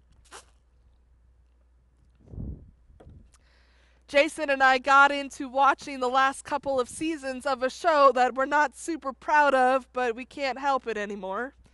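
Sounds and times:
person sipping water: 0.1s - 0.8s
soft gulp: 0.2s - 0.6s
speech: 4.1s - 11.6s.

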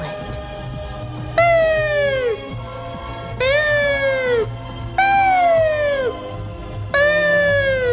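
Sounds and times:
voice imitating an ambulance siren: 1.4s - 2.5s, 3.4s - 6.2s, 7.0s - 7.9s.

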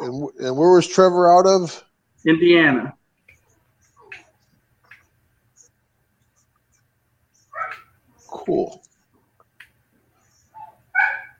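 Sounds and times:
speech: 0.3s - 3.0s, 8.5s - 8.8s
dog barking: 7.5s - 7.9s, 10.5s - 11.3s
dog yelping: 7.5s - 8.0s, 10.3s - 11.3s.

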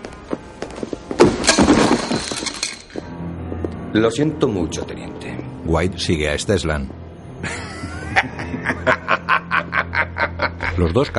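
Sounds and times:
cardboard box full of objects knocked down in a hallway: 1.2s - 3.0s
speech: 3.9s - 7.6s, 10.8s - 11.1s
laughter: 7.4s - 11.1s.

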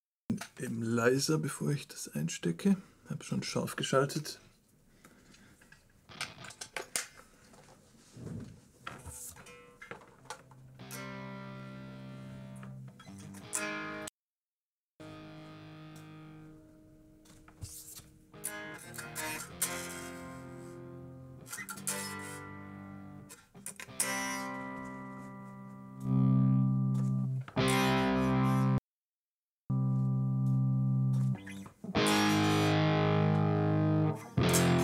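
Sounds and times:
speech: 0.6s - 4.5s
distorted electric guitar playing overdriven chords: 6.1s - 6.8s, 9.4s - 14.1s, 15.0s - 17.6s, 18.2s - 28.8s, 29.7s - 34.8s.

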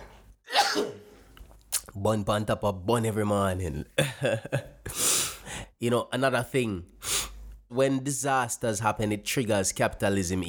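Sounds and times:
sneeze: 0.5s - 1.2s
speech: 2.0s - 5.0s, 5.8s - 6.9s, 7.7s - 10.4s.

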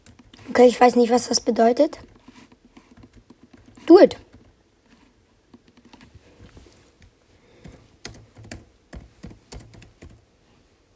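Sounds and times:
person typing a message on a computer keyboard: 0.0s - 0.5s, 2.0s - 4.6s, 5.5s - 6.1s, 7.6s - 10.2s
speech: 0.5s - 2.1s, 3.9s - 4.2s.

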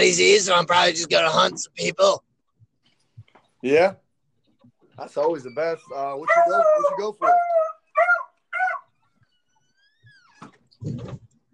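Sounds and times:
speech: 0.0s - 2.3s, 3.6s - 4.0s, 5.0s - 8.2s
dog barking: 6.2s - 8.9s.

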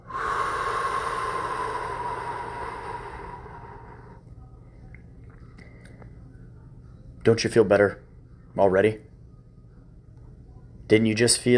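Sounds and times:
deep breath in through the nose and out through the mouth: 0.0s - 4.2s
speech: 7.3s - 8.0s, 8.6s - 9.1s, 10.9s - 11.5s.

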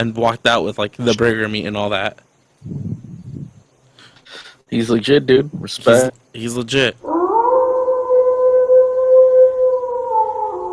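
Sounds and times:
speech: 0.0s - 2.9s, 4.7s - 7.2s
long steady wavering howl: 7.0s - 10.7s.

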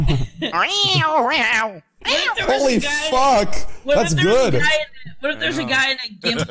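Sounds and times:
speech: 0.0s - 6.5s
person imitating a cat meowing: 0.5s - 1.9s.

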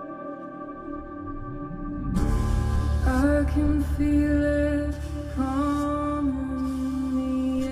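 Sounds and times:
drum corps sustained brass chords: 0.7s - 7.6s
drum corps deep drums: 2.0s - 6.0s.

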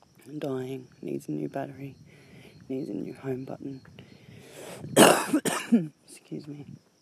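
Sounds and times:
speech: 0.3s - 2.0s, 2.7s - 4.0s, 4.8s - 6.9s
person coughing: 5.0s - 5.9s.

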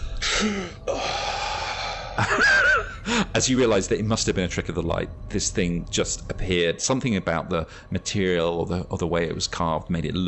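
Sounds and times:
person gasping: 0.2s - 2.2s
speech: 0.4s - 1.2s, 2.2s - 10.2s.

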